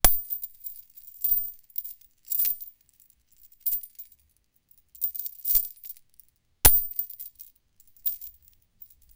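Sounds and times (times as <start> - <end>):
metal chain breaking: 0.0 - 2.8, 3.4 - 4.1, 5.0 - 6.1, 6.7 - 9.1.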